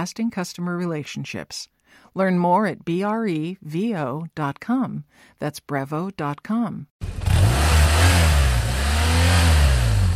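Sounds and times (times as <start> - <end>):
speech: 0.0 - 7.2
motorcycle engine revving: 7.0 - 10.1.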